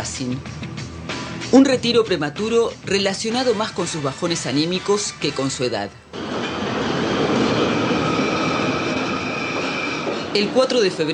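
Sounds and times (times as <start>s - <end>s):
speech: 0.0s - 0.6s, 1.4s - 6.2s, 10.3s - 11.1s
train passing through a station: 6.1s - 11.1s.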